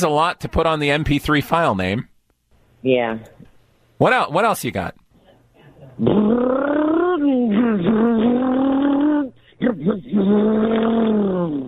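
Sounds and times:
speech: 0.0s - 2.1s, 2.8s - 3.4s, 4.0s - 5.0s, 5.9s - 6.6s, 9.6s - 11.6s
person voicing a car engine drone revving up and down: 6.0s - 11.6s.

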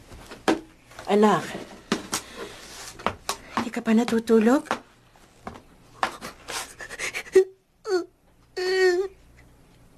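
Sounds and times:
speech: 1.1s - 1.7s, 3.8s - 4.8s
child crying softly with sniffles and whimpers: 7.1s - 9.2s.

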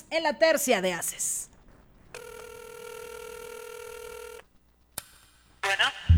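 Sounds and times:
speech: 0.1s - 1.5s, 5.7s - 6.1s
telephone ringing in a song's intro: 2.2s - 4.4s.

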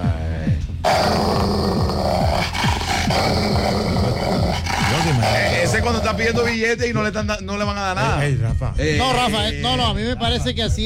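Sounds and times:
dog growling with low rumbling snarls: 0.8s - 6.6s
speech: 5.3s - 10.8s.

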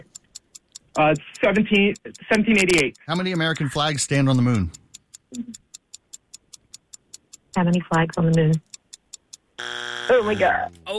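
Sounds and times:
game show timer ticking: 0.0s - 10.9s
speech: 1.0s - 5.6s, 7.6s - 8.7s, 9.6s - 10.9s
game show buzzer: 9.6s - 10.8s.

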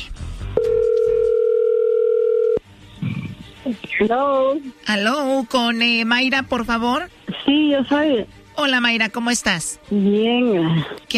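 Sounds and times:
telephone tone while a call is dialed: 0.6s - 2.6s
speech: 4.0s - 11.0s.

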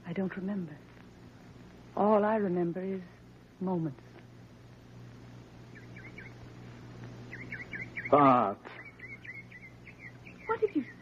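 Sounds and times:
steady low hum: 0.0s - 10.9s
speech: 0.1s - 0.9s, 2.0s - 4.1s, 8.1s - 8.8s, 10.6s - 10.9s
bird calling with quick warbling notes: 5.7s - 6.4s, 7.3s - 10.9s.

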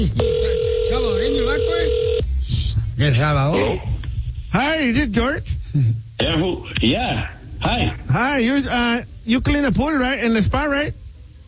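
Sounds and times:
speech: 0.0s - 0.3s, 0.9s - 3.9s, 4.5s - 11.0s
steady single-pitched telephone tone after a number is dialed: 0.0s - 2.2s.

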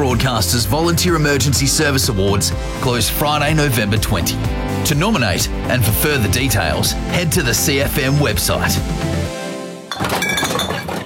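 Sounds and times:
speech: 0.0s - 9.2s
empty drink containers clinking together for recycling: 9.9s - 11.0s
glassy crash: 9.9s - 11.0s.

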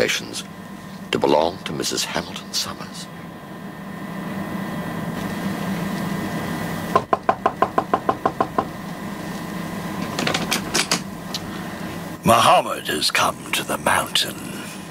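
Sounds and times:
speech: 0.0s - 3.2s, 12.3s - 14.6s
low mechanical hum: 0.0s - 14.8s
knocking on a cabin door: 6.9s - 8.7s.

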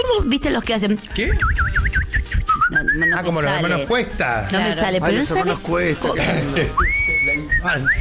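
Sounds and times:
speech: 0.0s - 1.8s, 2.7s - 7.0s, 7.6s - 8.0s
person whistling a short tune: 1.3s - 3.4s, 6.7s - 8.0s.

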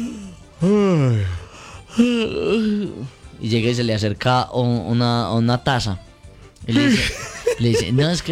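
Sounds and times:
person letting out exaggerated drawn-out yawn: 0.0s - 3.1s
speech: 0.6s - 1.4s, 2.0s - 8.3s
laughter: 6.8s - 8.3s.

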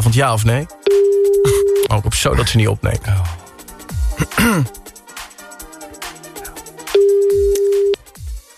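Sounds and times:
speech: 0.1s - 0.8s, 1.9s - 3.4s, 4.2s - 4.8s
telephone ringback tone as an outgoing call is placed: 0.8s - 1.9s, 7.0s - 8.0s.

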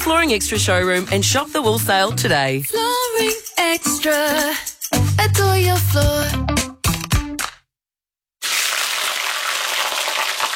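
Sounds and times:
speech: 0.1s - 6.5s
steak sizzling in a frying pan: 8.4s - 10.5s.

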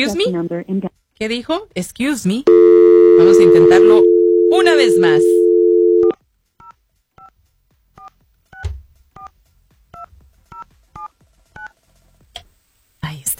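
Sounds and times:
speech: 0.0s - 5.4s
touch-tone keypad beeps as a telephone number is dialed: 2.5s - 6.2s.

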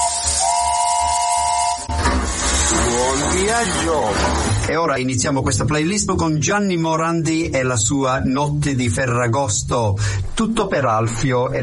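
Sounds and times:
steam train whistle blowing at departure: 0.0s - 2.0s
steam hissing from a departing train: 0.0s - 4.6s
speech: 3.4s - 11.6s.

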